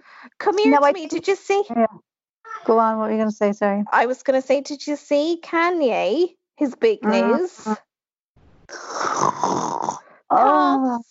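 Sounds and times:
speech: 0:00.2 - 0:07.9, 0:08.7 - 0:11.0
person fake snoring over the phone: 0:08.7 - 0:10.2.

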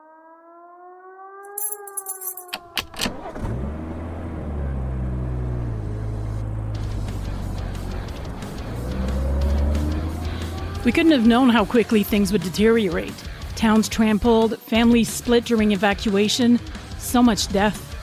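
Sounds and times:
siren wail: 0:00.0 - 0:02.8, 0:09.9 - 0:11.4
car traffic rumbling with engines droning: 0:01.6 - 0:13.2
speech: 0:10.8 - 0:17.8.

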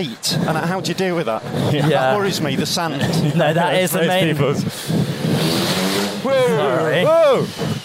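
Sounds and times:
speech: 0:00.0 - 0:07.8
motorbike engine revving and accelerating past: 0:04.1 - 0:07.8.

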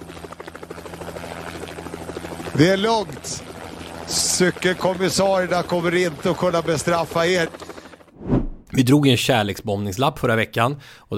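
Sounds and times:
helicopter passing overhead with rotor chop and engine drone: 0:00.0 - 0:08.2
speech: 0:02.6 - 0:03.5, 0:04.1 - 0:07.7, 0:08.8 - 0:11.1
low hum: 0:08.2 - 0:08.7.

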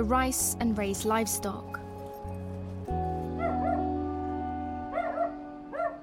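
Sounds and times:
speech: 0:00.0 - 0:01.8
dogs barking and yipping: 0:01.9 - 0:04.1, 0:04.8 - 0:06.0.

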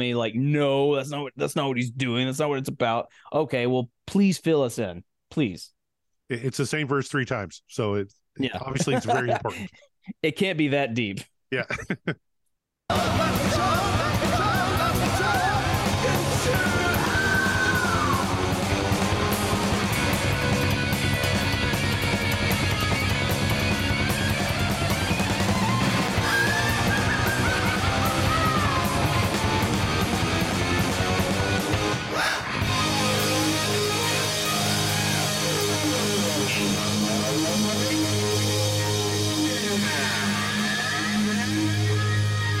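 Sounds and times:
speech: 0:00.0 - 0:12.3, 0:12.9 - 0:13.8
laughter: 0:08.4 - 0:09.9, 0:11.6 - 0:12.2
loud distorted rock music: 0:12.9 - 0:42.5.

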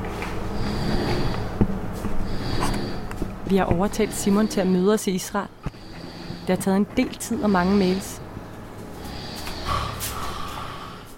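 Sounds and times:
man snoring loudly through the nose: 0:00.6 - 0:01.6, 0:02.3 - 0:03.1, 0:05.7 - 0:06.6, 0:07.4 - 0:08.2, 0:09.0 - 0:11.1
speech: 0:03.5 - 0:05.6, 0:06.5 - 0:08.2.

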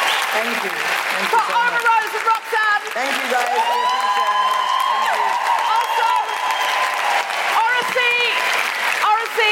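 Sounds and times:
crowd applauding: 0:00.0 - 0:09.5
speech: 0:00.3 - 0:05.1
whoops and cheering voices: 0:03.4 - 0:08.6.

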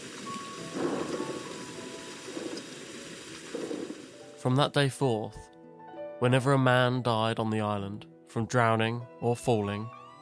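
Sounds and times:
low rumble of thunder: 0:00.0 - 0:04.4
steady hiss: 0:00.0 - 0:04.4
speech: 0:04.4 - 0:05.5, 0:06.2 - 0:10.0.

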